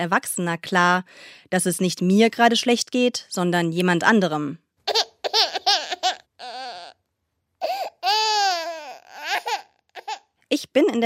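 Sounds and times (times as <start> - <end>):
speech: 0.0 - 5.6, 10.6 - 11.0
baby crying: 4.9 - 7.0, 7.6 - 10.4.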